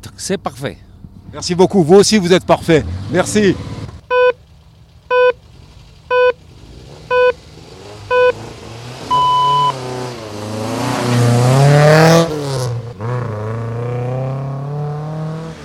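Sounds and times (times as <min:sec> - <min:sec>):
speech: 0:00.1 - 0:03.7
rally car engine revving hard at the start of the rally: 0:02.6 - 0:04.0, 0:05.5 - 0:15.6
short countdown beeps and a longer final tone: 0:04.1 - 0:04.4, 0:05.1 - 0:05.4, 0:06.1 - 0:06.4, 0:07.1 - 0:07.4, 0:08.1 - 0:08.4, 0:09.1 - 0:09.8.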